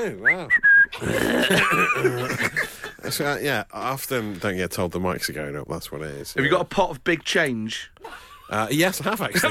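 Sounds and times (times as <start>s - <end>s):
rough noisy vocal sounds: 0.0s - 2.2s
speech: 0.0s - 9.4s
person whistling short sliding notes: 0.2s - 1.0s
laughter: 1.0s - 3.3s, 8.0s - 9.4s.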